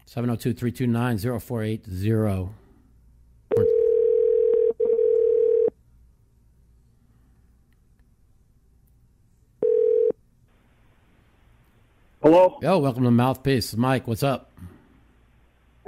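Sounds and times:
speech: 0.1s - 2.6s, 12.3s - 14.7s
telephone dial tone: 3.5s - 5.7s, 9.6s - 10.2s.

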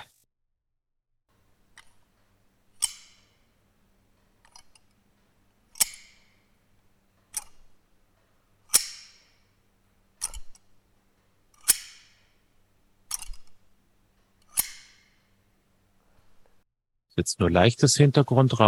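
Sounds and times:
rib shears making crisp metallic cuts: 2.8s - 3.4s, 5.7s - 6.4s, 8.7s - 9.4s, 11.5s - 12.4s, 13.1s - 13.5s, 14.5s - 15.2s
speech: 17.2s - 18.6s.

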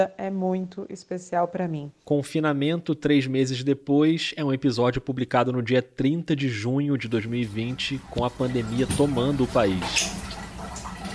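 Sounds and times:
speech: 0.0s - 10.4s
shower water falling onto a hard floor in a palliative care hospital: 7.0s - 11.1s.

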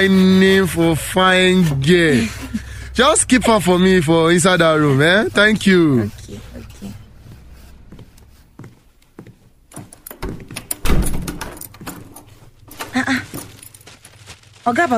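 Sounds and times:
speech: 0.0s - 6.5s, 14.6s - 14.9s
keys jangling: 9.7s - 14.1s.

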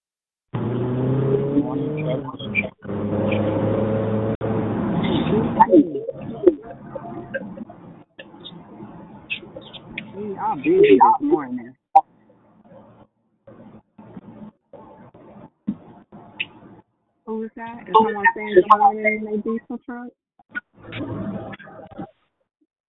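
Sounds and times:
diesel truck engine droning: 0.6s - 11.0s
person speaking over a phone line: 1.5s - 2.9s, 5.0s - 11.8s, 17.3s - 20.1s.

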